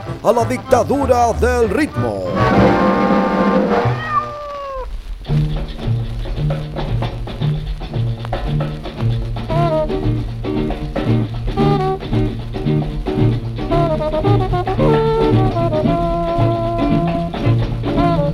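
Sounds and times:
loud steady rhythmic music: 0.0 - 4.0, 5.2 - 18.3
speech: 0.2 - 2.9
cat meowing: 3.7 - 5.0.

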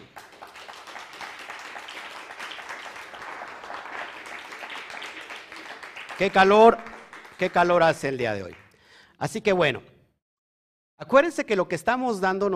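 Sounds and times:
audience applause: 0.0 - 8.7
speech: 6.2 - 8.6, 9.2 - 9.9, 11.0 - 12.5.

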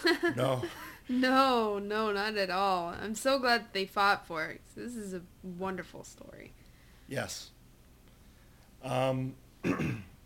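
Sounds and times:
speech: 0.0 - 7.6, 8.8 - 10.1
rough breathy cough: 9.6 - 10.2
voiced throat clearing: 9.6 - 10.2.

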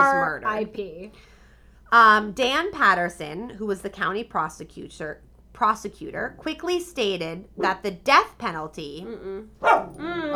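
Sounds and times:
speech: 0.3 - 10.3
chihuahua whiny tonal whimpering: 9.4 - 10.3
chihuahua yapping: 9.6 - 10.0.

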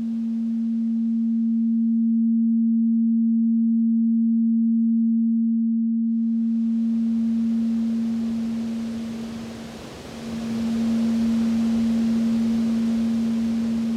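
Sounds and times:
steady pure low note from a waterfall recording filtered to a single note: 0.0 - 13.9
rushing waterfall roar: 6.2 - 13.9.

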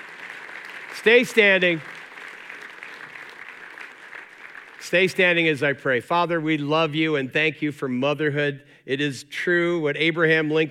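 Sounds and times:
large audience applauding: 0.0 - 5.6
speech: 1.0 - 1.9, 4.9 - 10.6.

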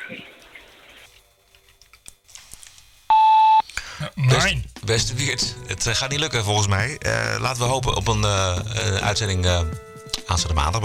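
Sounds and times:
single steady electronic voicemail beep: 3.1 - 3.6
speech: 4.4 - 10.8.

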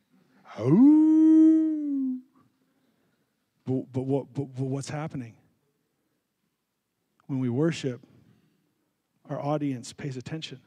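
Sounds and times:
person imitating a wolf howl: 0.5 - 2.3
speech: 0.6 - 1.1, 4.0 - 5.4, 7.3 - 8.1, 9.3 - 10.6.

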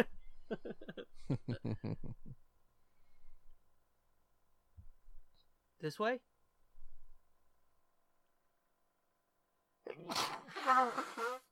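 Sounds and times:
speech: 0.0 - 2.5, 5.8 - 6.3, 10.0 - 11.4
loud voiced sneeze: 9.9 - 11.5.

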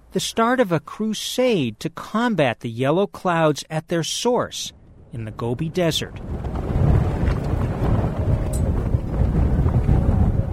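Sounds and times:
speech: 0.1 - 6.6
cool wind across a Mongolian plain battering the cloth walls of a yurt: 4.7 - 10.5.

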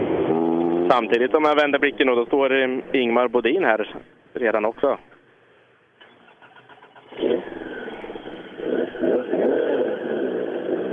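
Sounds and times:
Ford Escort RS 1800 rally car engine revving: 0.0 - 1.6, 6.9 - 10.9
speech: 0.9 - 5.1.

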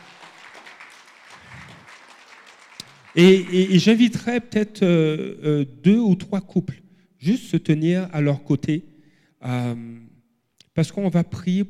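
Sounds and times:
crowd applauding: 0.0 - 3.9
speech: 3.1 - 10.1, 10.8 - 11.6.

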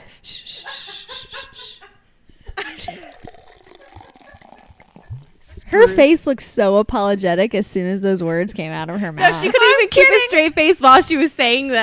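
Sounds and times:
champagne pouring into a glass: 2.8 - 5.6
speech: 5.7 - 11.8.

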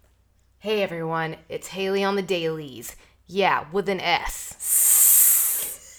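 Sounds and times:
speech: 0.6 - 4.8
person imitating a snake hiss with their voice: 4.6 - 5.9.

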